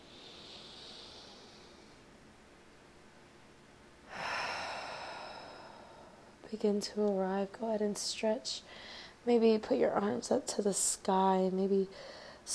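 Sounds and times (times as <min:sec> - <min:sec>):
deep inhale during a guided stretching and breathing session: 0:00.0 - 0:02.1, 0:04.0 - 0:06.4, 0:08.7 - 0:09.2, 0:11.9 - 0:12.5
speech: 0:06.5 - 0:12.5.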